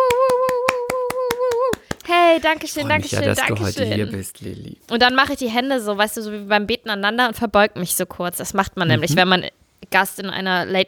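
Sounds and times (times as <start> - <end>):
hands clapping: 0.0 - 2.2
speech: 2.3 - 10.8.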